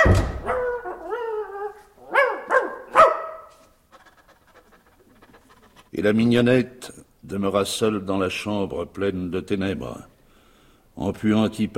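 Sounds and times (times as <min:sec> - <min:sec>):
dog whining: 0:00.0 - 0:03.2, 0:03.9 - 0:05.9
dog barking: 0:00.0 - 0:05.4
speech: 0:06.0 - 0:10.1, 0:11.0 - 0:11.7.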